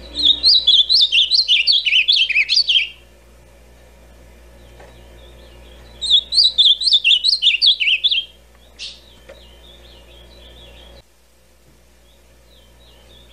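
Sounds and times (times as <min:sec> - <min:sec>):
ultramarine grosbeak short chip: 0:00.0 - 0:03.0, 0:05.0 - 0:11.0
ultramarine grosbeak singing bouncing wavering whistles: 0:00.0 - 0:03.0, 0:06.0 - 0:10.9.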